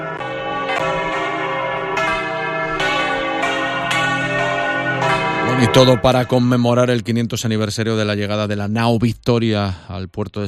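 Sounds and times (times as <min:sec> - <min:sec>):
several church bells pealing together: 0:00.0 - 0:08.3
speech: 0:05.6 - 0:10.4.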